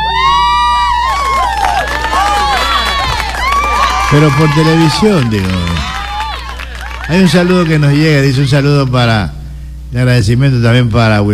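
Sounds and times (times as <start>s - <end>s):
crowd applause and cheering: 0.0s - 8.6s
speech: 4.1s - 6.0s, 7.1s - 11.3s.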